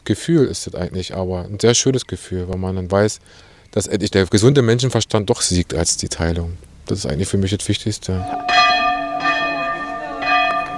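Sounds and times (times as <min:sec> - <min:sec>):
speech: 0:00.1 - 0:08.9
monastery chapel bell ringing: 0:08.2 - 0:10.7.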